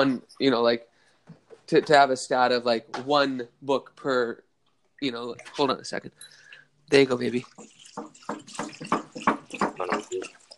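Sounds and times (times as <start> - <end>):
speech: 0.0 - 4.4, 5.0 - 8.1, 9.8 - 10.4
water poured for a pet, gurgling and splashing: 5.1 - 5.8, 6.4 - 10.5.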